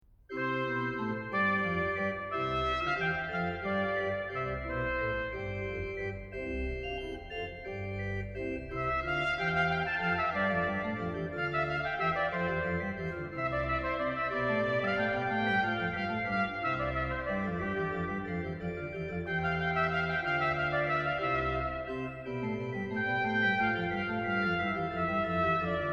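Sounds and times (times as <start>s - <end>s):
trumpet: 0.3s - 6.1s, 8.7s - 25.9s
organ: 0.3s - 25.9s.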